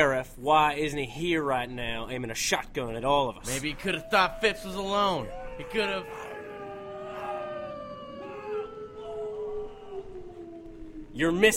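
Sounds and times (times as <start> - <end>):
speech: 0.0 - 6.2, 11.2 - 11.5
wolves howling: 3.4 - 11.5.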